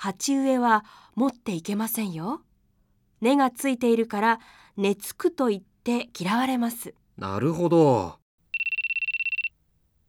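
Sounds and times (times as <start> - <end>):
speech: 0.0 - 2.5, 3.2 - 8.2
mobile phone ringtone trilling in rapid electronic pulses: 8.6 - 9.5.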